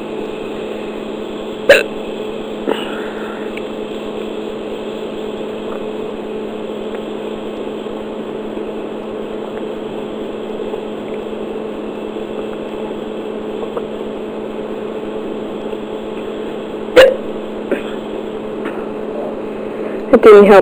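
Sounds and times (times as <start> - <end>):
steady low mechanical hum: 0.0 - 20.6
hiccups: 1.7 - 2.0, 16.9 - 18.0
speech: 1.7 - 2.0, 20.3 - 20.6.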